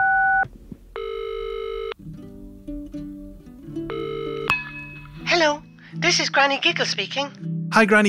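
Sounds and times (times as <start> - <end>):
electronic telephone tones of a call being placed: 0.0 - 0.4, 1.0 - 2.0, 3.9 - 4.5
speech: 5.4 - 8.0.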